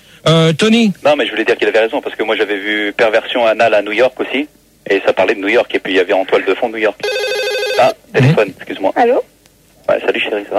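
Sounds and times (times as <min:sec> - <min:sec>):
speech: 0:00.2 - 0:09.3, 0:09.9 - 0:10.5
telephone ringing in warbling electronic bursts: 0:07.0 - 0:08.0.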